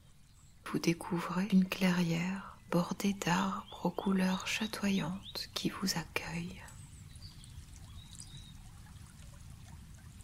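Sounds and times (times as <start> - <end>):
faint bird chirps: 0.0 - 9.1
small stream trickling and burbling: 0.0 - 10.2
speech: 0.7 - 6.6.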